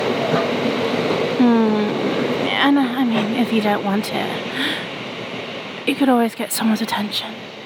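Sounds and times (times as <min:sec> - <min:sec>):
steady rail rumble on a train platform: 0:00.0 - 0:07.6
speech: 0:02.7 - 0:04.7, 0:05.8 - 0:07.4.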